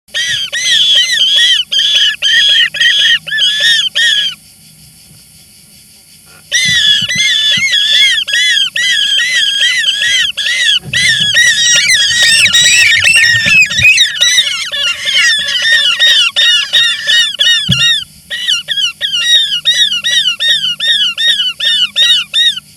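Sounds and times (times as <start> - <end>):
European roller calling: 0.1 - 4.4, 6.3 - 22.7.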